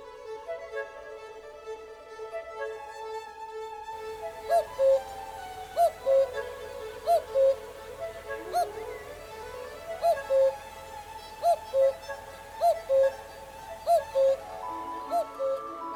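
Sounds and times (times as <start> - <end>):
orchestral instruments imitating cuckoo two-note calls: 4.1 - 15.9.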